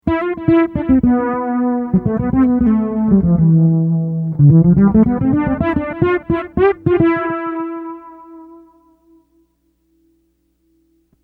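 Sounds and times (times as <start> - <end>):
delay chorus effect: 0.0 - 9.4.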